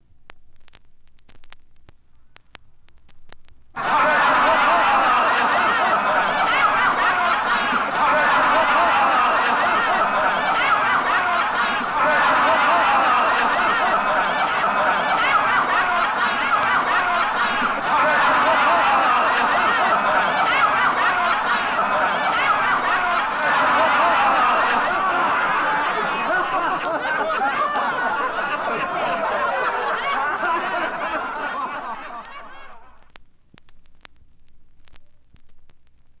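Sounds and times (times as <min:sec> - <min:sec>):
large crowd laughing: 0:03.8 - 0:33.0.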